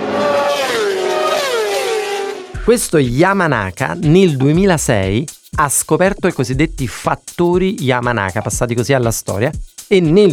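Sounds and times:
motorcycle engine revving: 0.0 - 2.8
speech: 2.6 - 10.3.

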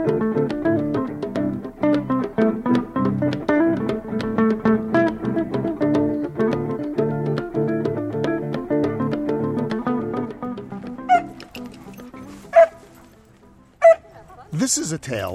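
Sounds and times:
soft music: 0.0 - 15.3
puppy yipping and whimpering: 11.1 - 13.0, 13.8 - 14.4
speech: 14.8 - 15.3.

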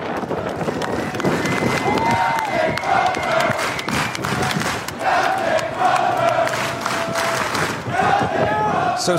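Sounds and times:
large crowd of sailors cheering and shouting: 0.0 - 9.1
sailors clapping: 0.1 - 8.0
sailors whistling: 2.6 - 4.4.

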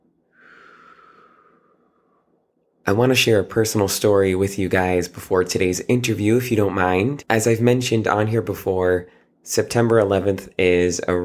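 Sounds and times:
person exhaling slowly during a guided breathing exercise: 0.3 - 2.3
speech: 2.9 - 11.2.

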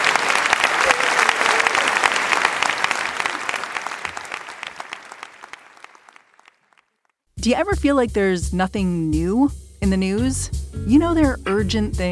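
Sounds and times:
crowd applauding: 0.0 - 6.9
speech: 7.4 - 12.1.

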